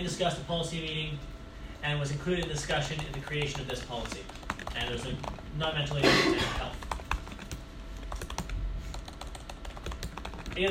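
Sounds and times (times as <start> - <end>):
speech: 0.0 - 6.8
typing on a computer keyboard: 2.3 - 5.4, 6.6 - 10.6.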